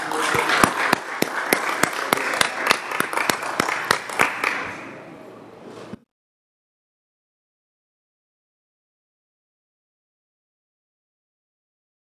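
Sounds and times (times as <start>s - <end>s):
one set of sharp steady claps: 0.0s - 4.8s
room of people applauding: 0.0s - 4.9s.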